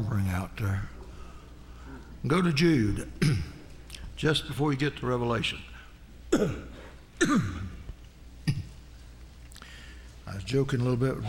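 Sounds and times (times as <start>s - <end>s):
speech: 0.0s - 1.0s, 1.9s - 3.5s, 4.2s - 5.7s, 6.3s - 7.6s, 10.3s - 11.2s
person clearing throat: 3.2s - 3.6s, 6.3s - 8.8s
person coughing: 3.2s - 3.6s, 6.3s - 7.8s, 8.4s - 8.8s.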